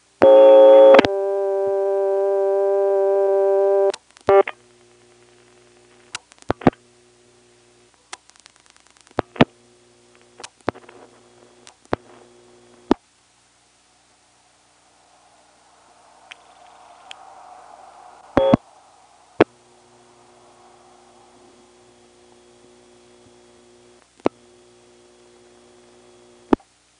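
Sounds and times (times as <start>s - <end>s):
faint steady hum: 0.0s - 26.9s
telephone line noise hiss: 0.0s - 26.9s
telephone exchange ringback circuit tone: 0.2s - 4.6s, 14.4s - 26.5s.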